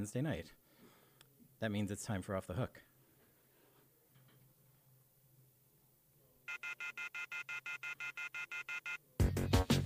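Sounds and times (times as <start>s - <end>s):
speech: 0.0s - 0.6s, 1.6s - 2.9s, 6.8s - 9.7s
telephone ringing with electronic trill: 6.5s - 9.0s.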